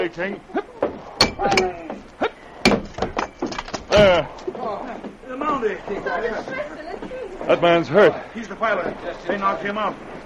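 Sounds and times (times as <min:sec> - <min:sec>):
speech: 0:00.1 - 0:00.6, 0:01.4 - 0:02.0, 0:03.9 - 0:10.2
axe breaking a locked door lock: 0:01.2 - 0:01.9, 0:02.7 - 0:04.4.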